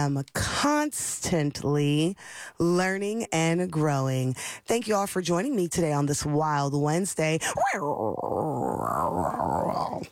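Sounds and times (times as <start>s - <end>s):
speech: 0.0s - 10.0s
human voice imitating a tiger growl: 7.5s - 10.0s.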